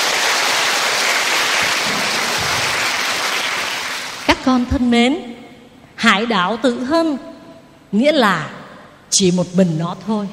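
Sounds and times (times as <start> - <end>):
crowd applauding: 0.0 - 4.3
speech: 4.3 - 5.4, 6.0 - 7.3, 7.9 - 10.3.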